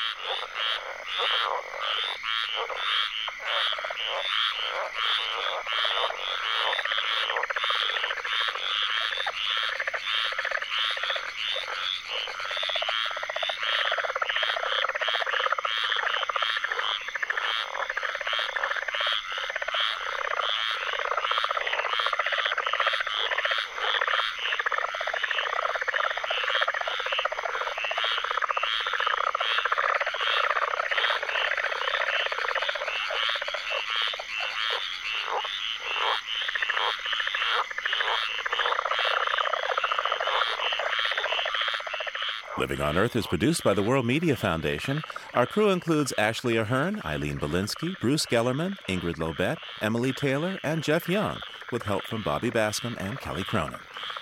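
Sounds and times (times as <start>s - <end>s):
tree frog chorus in a swamp in Apalachicola Florida: 0.0s - 54.1s
speech: 0.2s - 9.3s, 42.6s - 54.1s.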